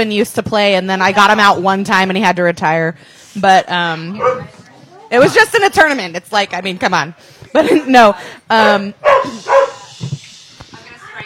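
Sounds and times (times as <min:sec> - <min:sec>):
speech: 0:00.0 - 0:09.7
dog barking loudly: 0:04.2 - 0:04.5, 0:08.6 - 0:09.9.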